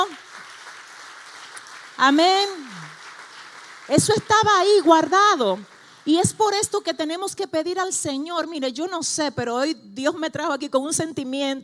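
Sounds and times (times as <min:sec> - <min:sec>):
audience applause: 0:00.0 - 0:06.2
speech: 0:02.0 - 0:02.7, 0:03.9 - 0:11.6.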